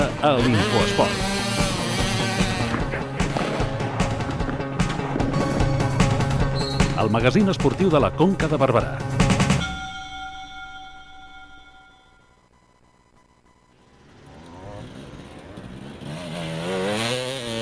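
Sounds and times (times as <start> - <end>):
enduro motorcycle engines snarling and revving: 0.0 - 7.8, 13.8 - 17.6
speech: 0.2 - 1.6, 7.0 - 9.2.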